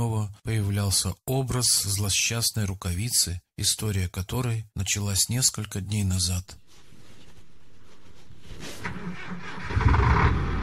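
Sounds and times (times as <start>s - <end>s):
speech: 0.0s - 6.8s
heavy mining dump truck engine revving in a garage: 8.8s - 10.6s.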